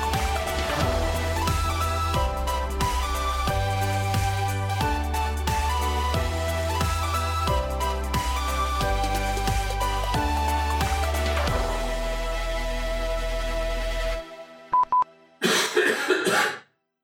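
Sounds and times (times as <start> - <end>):
instrumental music: 0.0 - 14.6
loud raspy cough: 15.4 - 16.7.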